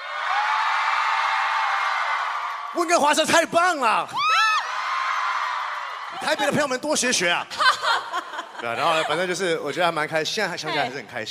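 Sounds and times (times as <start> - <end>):
large audience screaming and cheering: 0.0 - 8.0
speech: 2.8 - 4.2, 6.1 - 7.8, 8.6 - 11.2
laughter: 7.2 - 9.4.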